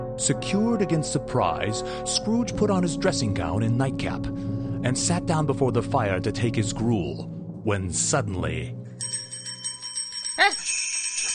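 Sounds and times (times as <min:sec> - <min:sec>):
speech: 0:00.2 - 0:08.8
many bells ringing throughout a house: 0:09.0 - 0:11.3.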